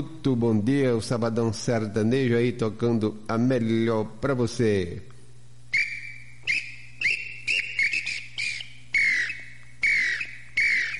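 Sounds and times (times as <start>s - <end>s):
speech: 0.0s - 5.1s
faint steady low hum: 0.0s - 10.9s
inhambu tinamou calling at daybreak: 5.7s - 10.9s.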